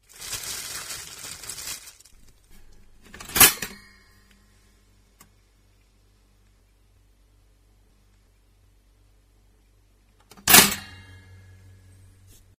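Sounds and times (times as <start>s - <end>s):
toaster: 3.1s - 3.9s, 10.3s - 11.1s.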